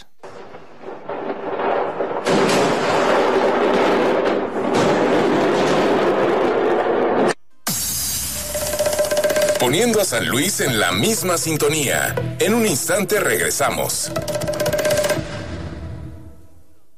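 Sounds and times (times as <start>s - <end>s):
powerful explosion with rumbling crackling roar: 0.2s - 9.8s
speech: 9.7s - 14.4s.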